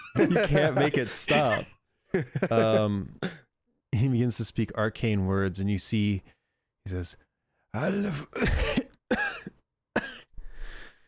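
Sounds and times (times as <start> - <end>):
laughter: 0.0 - 3.0
person coughing up blood: 0.2 - 1.7, 7.8 - 10.3
speech: 0.2 - 8.8.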